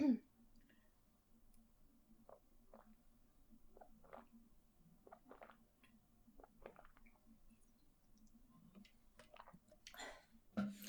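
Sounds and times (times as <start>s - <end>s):
person gulping water from a 500 ml plastic bottle: 2.2s - 3.0s, 3.6s - 4.4s, 5.0s - 7.2s, 8.8s - 10.1s
soft swallowing: 3.8s - 4.3s, 5.0s - 5.6s, 6.4s - 7.2s
wet mouth clicks: 3.8s - 4.3s, 5.1s - 5.6s, 6.4s - 7.2s.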